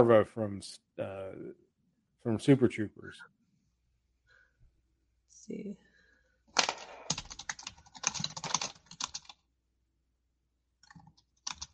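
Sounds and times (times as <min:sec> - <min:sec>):
speech: 0:00.0 - 0:01.6, 0:02.2 - 0:03.4, 0:05.5 - 0:05.8
typing on a computer keyboard: 0:06.6 - 0:09.4, 0:10.8 - 0:11.7.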